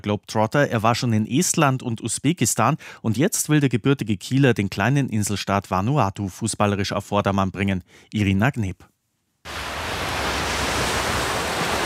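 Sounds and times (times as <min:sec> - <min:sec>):
speech: 0:00.0 - 0:08.9
ocean waves breaking on a palm-lined white sand beach in Vanuatu: 0:09.5 - 0:11.8.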